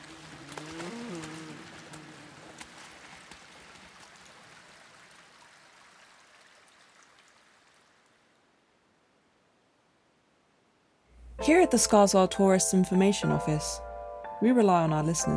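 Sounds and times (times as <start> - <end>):
footsteps splashing through shallow water in a tunnel: 0.0 - 5.2
running and trickling water in a tunnel: 0.0 - 8.7
speech: 11.4 - 15.3.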